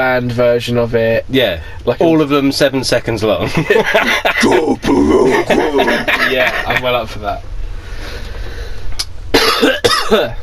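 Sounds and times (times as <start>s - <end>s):
speech: 0.0s - 8.2s, 9.6s - 10.4s
laughter: 3.4s - 7.0s
harsh coughs: 4.4s - 6.1s, 9.4s - 10.4s.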